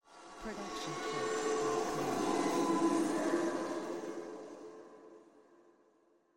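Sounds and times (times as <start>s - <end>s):
eerie sci-fi groan: 0.6s - 5.2s.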